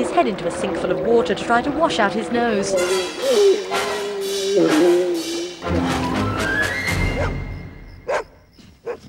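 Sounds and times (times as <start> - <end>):
speech: 0.2 - 4.0, 4.6 - 5.1
dog howling outside: 1.8 - 7.5.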